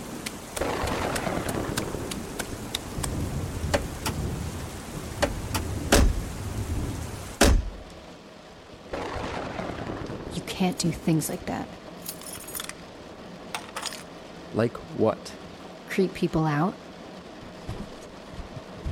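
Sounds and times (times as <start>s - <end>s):
heavy storm rain hissing: 0.0s - 12.0s, 12.6s - 18.9s
loud cracks: 0.5s - 3.2s
speech: 10.6s - 11.8s, 14.6s - 15.4s, 16.0s - 16.8s.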